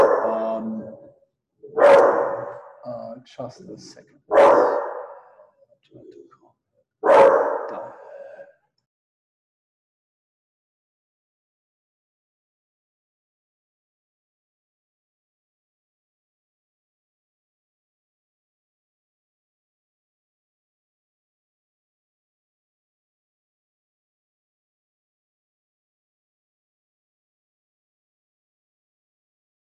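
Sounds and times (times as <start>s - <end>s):
dog barking loudly: 0.0s - 0.7s, 1.7s - 2.9s, 4.3s - 5.4s, 7.0s - 8.4s
speech: 3.2s - 4.6s.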